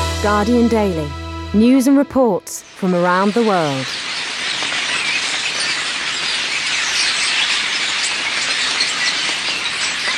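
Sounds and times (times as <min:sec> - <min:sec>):
speech: 0:00.2 - 0:04.0
flock of starlings chattering in Britain: 0:03.0 - 0:10.1.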